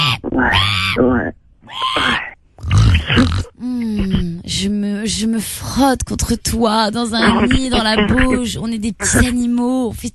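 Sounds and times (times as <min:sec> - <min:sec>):
person imitating sow grunts and snorts: 0:00.0 - 0:04.3
speech: 0:00.4 - 0:02.2, 0:04.5 - 0:10.1.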